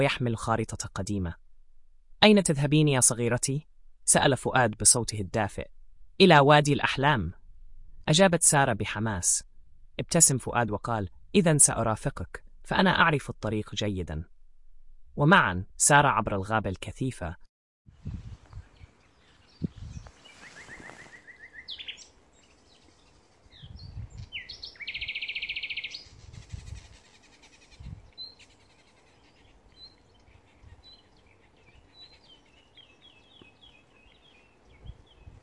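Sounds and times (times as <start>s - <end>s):
speech: 0.0s - 1.4s, 2.2s - 7.4s, 8.0s - 14.3s, 15.2s - 17.4s
bird chirps and short trills in a forest: 18.4s - 35.4s
rustling: 19.2s - 21.6s.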